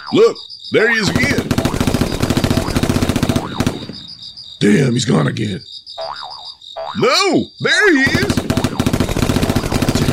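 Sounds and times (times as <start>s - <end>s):
speech: 0.1s - 1.5s, 4.6s - 6.2s, 6.9s - 8.4s
machine-gun fire in a radio drama: 1.0s - 4.2s, 8.1s - 10.1s.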